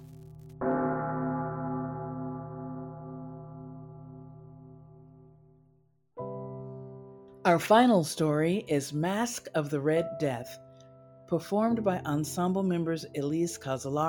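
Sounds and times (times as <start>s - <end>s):
large church bell tolling: 0.6s - 5.5s
speech: 7.5s - 10.6s, 11.3s - 14.0s.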